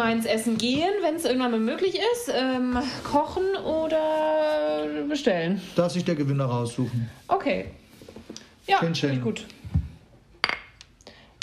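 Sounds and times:
speech: 0:00.0 - 0:07.8, 0:08.7 - 0:09.6
glasses clinking in a toast: 0:10.4 - 0:10.8.

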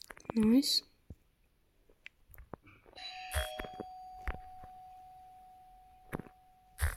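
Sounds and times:
speech: 0:00.3 - 0:00.9
doorbell chime: 0:03.0 - 0:06.8.

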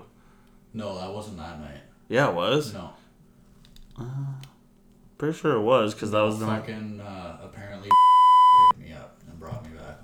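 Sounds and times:
speech: 0:00.7 - 0:03.0, 0:04.0 - 0:04.5, 0:05.2 - 0:08.7
censor bleep tone: 0:07.9 - 0:08.7.

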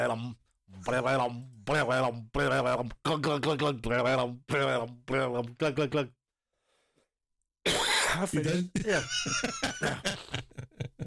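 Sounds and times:
speech: 0:00.0 - 0:06.2, 0:07.6 - 0:11.0
person in a hacking coughing fit: 0:07.7 - 0:09.1
laughter: 0:08.4 - 0:11.0.

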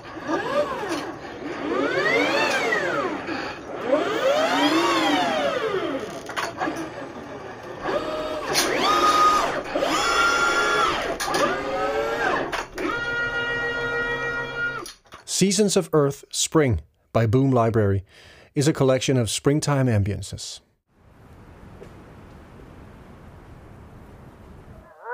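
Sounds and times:
industrial robot arm servo motors whining: 0:00.1 - 0:06.9, 0:07.8 - 0:15.0
speech: 0:15.4 - 0:20.7.

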